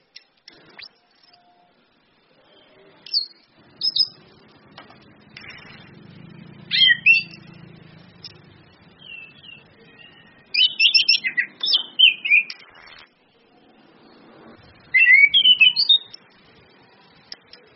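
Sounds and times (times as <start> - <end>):
orange-headed thrush singing fluty warbled whistles: 3.6 - 17.7.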